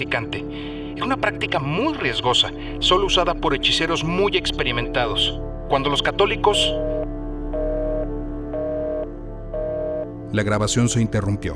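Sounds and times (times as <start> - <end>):
speech: 0.0 - 6.9, 10.3 - 11.5
phone low-battery warning beeps: 6.4 - 10.1.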